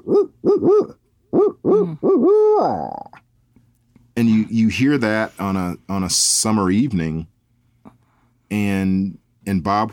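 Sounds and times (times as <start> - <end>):
human voice imitating a barred owl call: 0.0 - 3.3
speech: 2.6 - 3.0, 4.2 - 7.3, 8.5 - 9.9.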